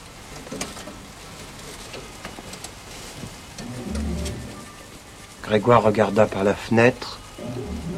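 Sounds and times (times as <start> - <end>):
steady rain pattering on a zinc roof: 0.0 - 7.9
speech: 5.5 - 7.2.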